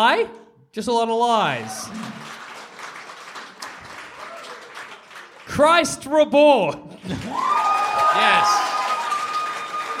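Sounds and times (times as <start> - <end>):
speech: 0.0 - 2.2, 5.5 - 8.7
crowd applauding: 1.6 - 5.9, 7.0 - 9.9.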